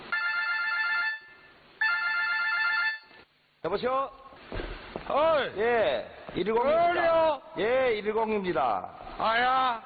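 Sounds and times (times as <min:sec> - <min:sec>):
telephone ringing with electronic trilling tone at a 110 rescue service: 0:00.1 - 0:03.3
speech: 0:03.6 - 0:09.8.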